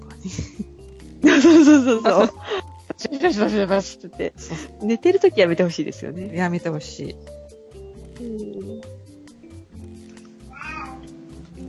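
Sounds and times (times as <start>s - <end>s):
speech: 0.2s - 0.7s, 1.4s - 2.4s, 3.2s - 7.4s, 8.2s - 8.9s
laughter: 1.2s - 3.4s
domestic cat meowing: 10.5s - 11.2s.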